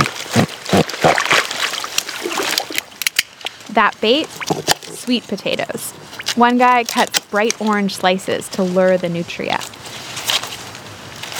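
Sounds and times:
people wading through chest-deep marsh water: 0:00.0 - 0:07.1
speech: 0:03.8 - 0:04.5, 0:05.1 - 0:09.6.

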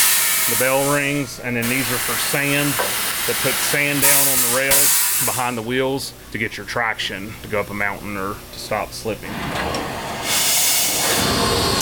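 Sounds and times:
steam locomotive boiler hissing while being filled with water: 0:00.0 - 0:05.7, 0:09.3 - 0:11.8
speech: 0:00.5 - 0:09.9.

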